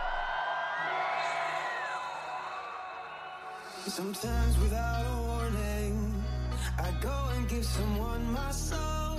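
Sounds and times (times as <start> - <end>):
large crowd screaming and whooping: 0.0 - 4.4
speech: 3.9 - 6.0, 6.8 - 9.0.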